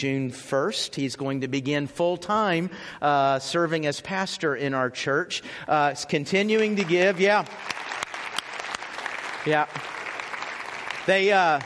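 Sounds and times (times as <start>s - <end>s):
speech: 0.0s - 8.0s, 9.4s - 10.0s, 11.1s - 11.6s
church audience clapping: 6.3s - 11.6s.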